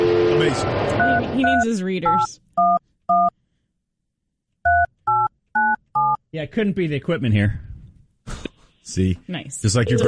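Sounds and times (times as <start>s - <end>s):
speech: 0.4s - 2.4s, 6.3s - 7.7s, 8.8s - 10.0s
telephone keypad dialing tones: 4.7s - 6.2s.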